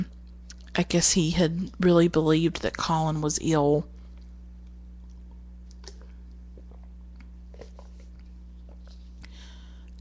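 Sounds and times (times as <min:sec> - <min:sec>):
steady low electrical hum: 0:00.0 - 0:10.0
speech: 0:00.8 - 0:04.0
wet mouth clicks from sipping water: 0:05.1 - 0:09.3
person gulping water: 0:05.1 - 0:10.0.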